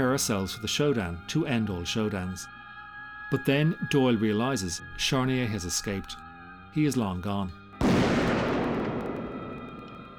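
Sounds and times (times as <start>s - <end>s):
speech: 0.0s - 2.6s, 3.3s - 8.0s
gunshot echoing in an empty derelict warehouse: 7.8s - 10.1s.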